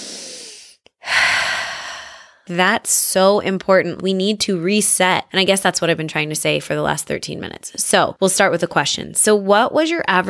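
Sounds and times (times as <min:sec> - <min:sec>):
deep breath in and out as a slow relaxation exercise: 0:00.0 - 0:02.5
speech: 0:02.5 - 0:10.2.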